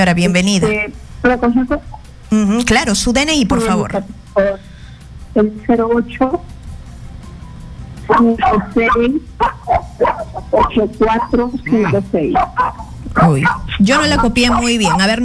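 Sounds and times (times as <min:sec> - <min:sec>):
speech: 0:00.0 - 0:04.7, 0:05.4 - 0:06.5, 0:08.1 - 0:15.2
small dog yapping in the background of a phone call: 0:08.1 - 0:15.2.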